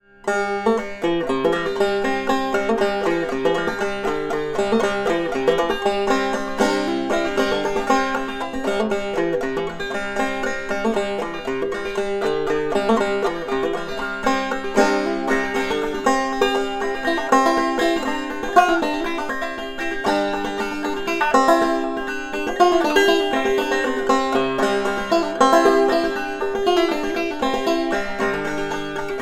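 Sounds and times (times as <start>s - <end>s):
banjo with African Blackwood tonerings: 0.0s - 29.2s.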